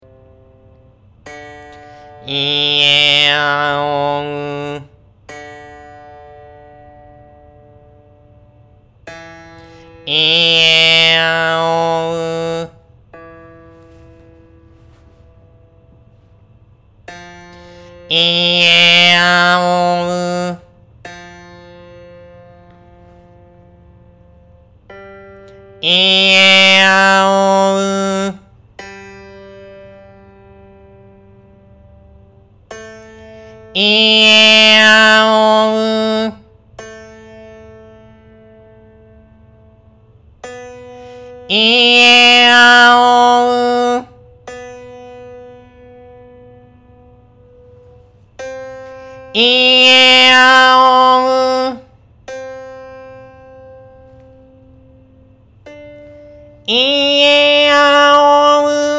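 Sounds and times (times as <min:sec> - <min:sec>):
voice raised in the throat changing vowels: 0:01.9 - 0:05.0, 0:09.6 - 0:13.2, 0:17.6 - 0:20.8, 0:25.8 - 0:28.5, 0:33.7 - 0:36.5, 0:41.1 - 0:44.2, 0:48.8 - 0:52.0, 0:56.6 - 0:58.9.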